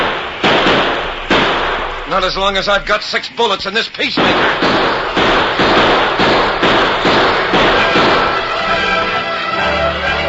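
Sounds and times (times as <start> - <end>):
explosive blasts blasting open the door of a train's express car: 0.0 - 3.0, 4.2 - 9.2
speech: 2.1 - 6.0.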